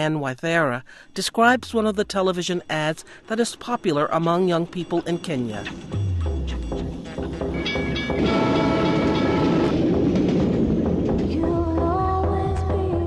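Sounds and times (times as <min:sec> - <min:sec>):
speech: 0:00.0 - 0:06.0
high whining tones of a train: 0:01.3 - 0:11.3
train rumbling along the tracks through a station: 0:01.4 - 0:13.0
metallic squeals of a train: 0:02.6 - 0:10.7
train wheels clacking over the rails: 0:07.6 - 0:12.2.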